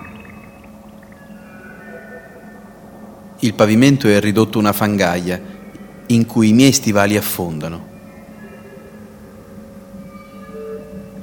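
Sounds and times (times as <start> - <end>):
water drips: 0.0 - 1.4
faint higher ringing tones: 0.0 - 11.2
speech: 3.4 - 5.5, 6.1 - 7.9.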